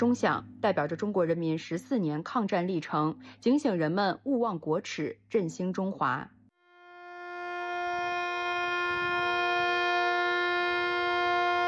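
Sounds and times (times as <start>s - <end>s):
speech: 0.0s - 6.4s
air-raid siren wailing across the city of Shenyang, China: 6.6s - 11.6s
horns of stopped vehicles: 6.6s - 11.6s.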